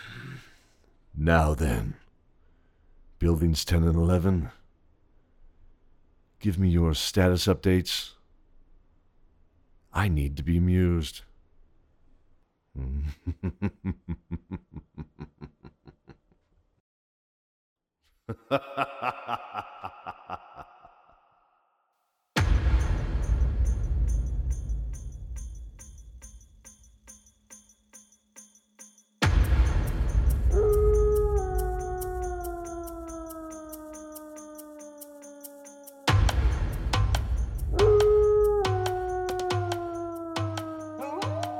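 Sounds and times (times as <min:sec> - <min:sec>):
speech: 0:01.2 - 0:02.0, 0:03.2 - 0:04.6, 0:06.4 - 0:08.2, 0:10.0 - 0:11.3, 0:12.8 - 0:16.1, 0:18.3 - 0:20.7
laughter: 0:12.8 - 0:16.3, 0:18.3 - 0:21.1
deep rumbling boom: 0:22.4 - 0:25.7
faint steady ticking: 0:22.8 - 0:38.2
wolves howling: 0:30.5 - 0:36.4, 0:37.6 - 0:41.5.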